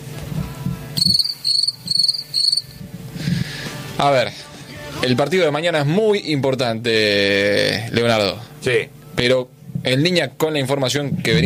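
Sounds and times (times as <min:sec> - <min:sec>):
crickets chirping: 0:01.0 - 0:02.8
speech: 0:04.0 - 0:11.4.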